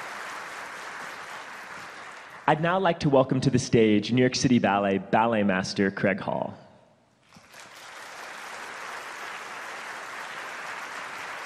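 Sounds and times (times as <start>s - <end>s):
audience applause for female performers: 0.0s - 2.4s, 7.2s - 11.4s
speech: 2.5s - 6.6s.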